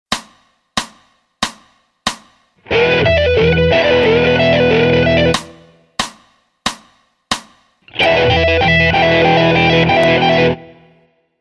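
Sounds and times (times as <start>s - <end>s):
guitar lick: 2.6s - 5.8s, 7.9s - 11.0s.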